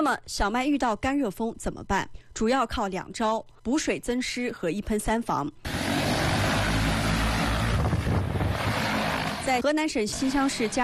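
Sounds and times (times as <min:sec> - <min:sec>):
speech: 0:00.0 - 0:05.8, 0:09.5 - 0:10.8
crop-spraying drones buzzing over wheat fields: 0:05.6 - 0:10.8
faint wind-like rush: 0:05.7 - 0:09.5.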